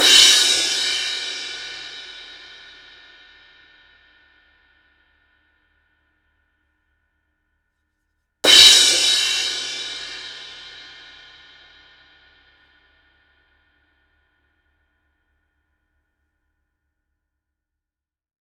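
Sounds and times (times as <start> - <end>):
crash cymbal: 0.0 - 4.5, 8.5 - 12.4.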